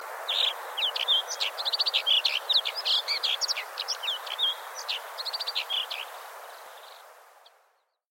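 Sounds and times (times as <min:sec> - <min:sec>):
alpine accentor singing: 0:00.3 - 0:06.1.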